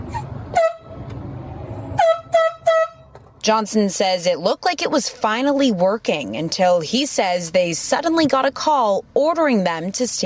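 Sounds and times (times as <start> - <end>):
low rumble: 0.0 - 10.2
air horn blasts used by biologists to flush a bear out: 0.1 - 1.0, 1.9 - 3.1
speech: 3.4 - 10.2.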